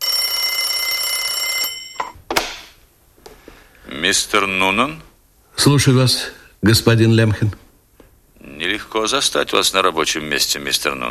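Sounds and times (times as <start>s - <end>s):
telephone ringing with electronic trill: 0.0s - 2.3s
speech: 4.0s - 7.6s, 8.8s - 11.0s.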